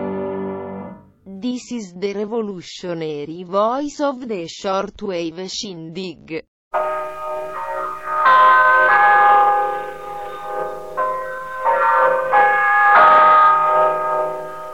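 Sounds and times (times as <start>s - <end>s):
speech: 1.5s - 7.0s
radio time-signal chime of bright ringing bell tones: 6.8s - 14.7s.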